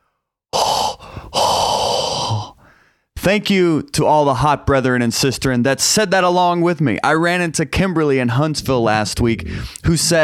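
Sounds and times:
forceful hot breath exhaled: 0.6s - 3.1s
speech: 3.2s - 10.2s.

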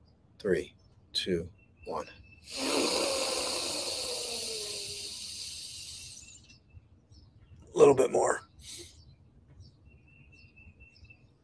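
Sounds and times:
speech: 0.4s - 3.0s
deep breath drawn in through the nose: 2.4s - 6.4s.

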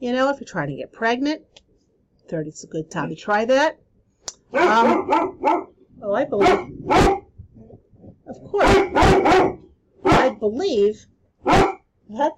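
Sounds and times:
speech: 0.0s - 1.6s, 2.3s - 7.2s, 8.5s - 9.6s, 10.4s - 12.3s
dog barking and yelping: 4.5s - 5.7s, 6.4s - 7.3s, 8.5s - 10.4s, 11.4s - 11.8s.

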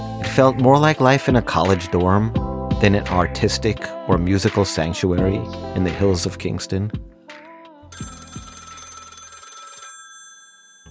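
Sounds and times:
speech: 0.4s - 7.1s
telephone bell ringing: 7.9s - 10.8s.

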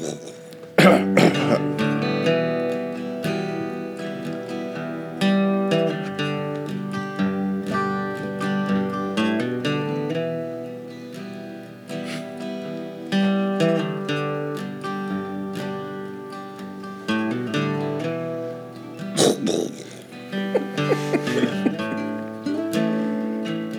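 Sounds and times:
person clearing throat: 0.0s - 1.6s, 19.2s - 21.9s
laughter: 0.0s - 1.8s, 18.9s - 23.2s
tuneful instrumental music: 0.0s - 23.7s.

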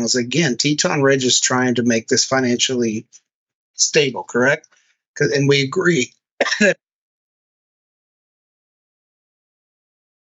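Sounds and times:
speech: 0.0s - 3.2s, 3.8s - 6.8s
person coughing: 6.4s - 6.8s.

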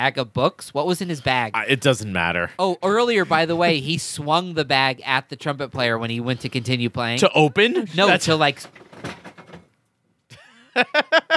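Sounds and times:
speech: 0.0s - 8.8s, 10.8s - 11.3s
pile of objects knocked over by a person and clattering: 8.6s - 9.7s
laughter: 10.3s - 11.3s.

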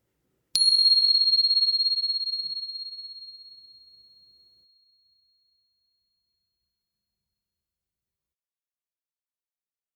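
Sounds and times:
meditation bell ringing: 0.6s - 4.4s.

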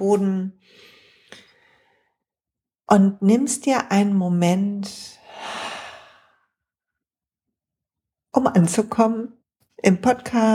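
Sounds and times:
speech: 0.0s - 1.4s, 2.9s - 5.6s, 8.4s - 10.5s
slow deep breath: 0.6s - 2.2s, 5.2s - 6.5s.

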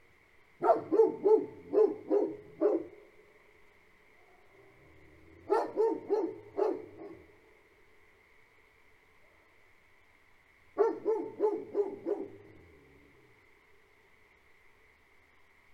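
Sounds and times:
Great Pyrenees livestock guardian dogs barking on a farm at night: 0.6s - 3.0s, 5.5s - 7.3s, 10.8s - 12.6s.

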